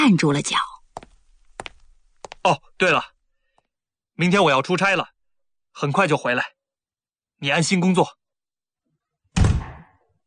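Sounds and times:
speech: 0.0 - 0.7, 2.4 - 3.1, 4.2 - 5.1, 5.8 - 6.6, 7.4 - 8.2
door being shut with a dull solid thump: 9.4 - 9.9.

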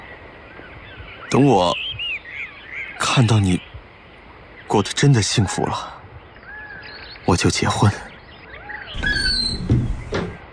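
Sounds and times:
speech: 1.3 - 2.0, 3.2 - 3.7, 4.7 - 6.0, 7.3 - 8.1
door hinge creaking open: 9.0 - 10.5
soft clunks and rattles: 9.0 - 10.5.

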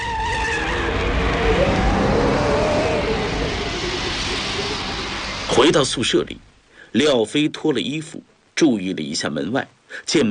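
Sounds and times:
motorcycle riding away with engine roaring: 0.7 - 5.7
speech: 5.6 - 10.2.

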